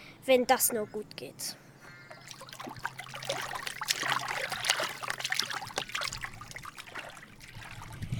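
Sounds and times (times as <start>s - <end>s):
speech: 0.2s - 1.6s
water sloshing and splashing as swimmers cross a river: 2.0s - 8.1s.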